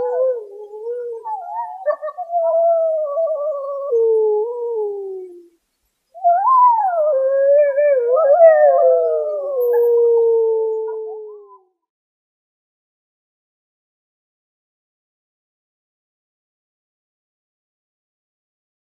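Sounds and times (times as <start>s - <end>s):
Iberian wolf pack howling at night: 0.0s - 5.5s, 6.2s - 11.7s.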